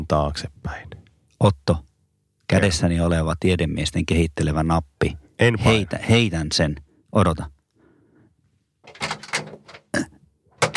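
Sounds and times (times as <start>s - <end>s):
speech: 0.1s - 1.9s, 2.5s - 7.6s
short scraping and rattling bursts: 8.8s - 9.9s, 10.6s - 10.7s
door being opened to throw something outside: 8.8s - 10.7s.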